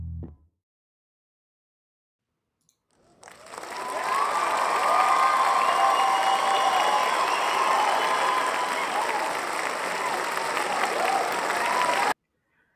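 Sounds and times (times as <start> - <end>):
live studio audience applause and cheering: 3.0 - 12.1.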